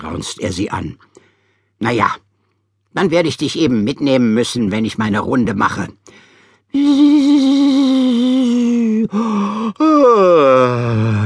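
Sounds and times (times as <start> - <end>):
speech: 0.1 - 1.2, 1.8 - 2.2, 2.9 - 11.2
voice imitating a bumblebee yawning: 6.7 - 11.2.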